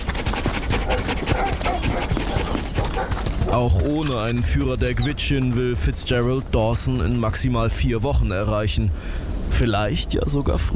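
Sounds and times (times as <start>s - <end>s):
sled dogs panting while harnessed: 0.0s - 5.1s
sled dogs whining: 0.8s - 3.2s
speech: 3.6s - 10.7s.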